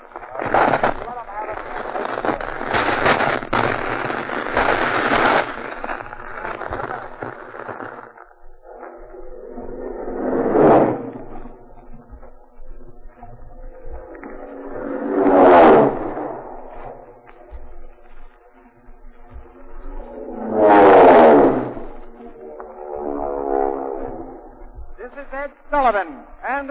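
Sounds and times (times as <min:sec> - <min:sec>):
Marine dive bomber planes in a dive-bombing attack: 0:00.0 - 0:26.6.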